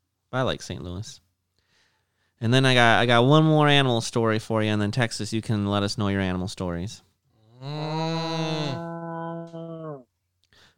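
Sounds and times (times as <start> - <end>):
speech: 0.3 - 1.2, 2.4 - 8.0
cow from a wandering herd mooing in the streets: 7.5 - 10.0.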